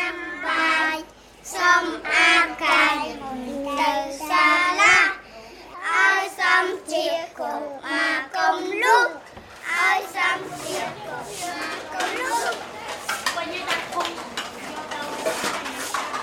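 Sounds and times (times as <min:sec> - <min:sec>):
young children singing daycare songs: 0:00.0 - 0:05.2, 0:05.8 - 0:12.6
several people chatting: 0:00.0 - 0:16.2
dishes and cutlery clinking as women clean an outdoor dining area: 0:10.4 - 0:16.2.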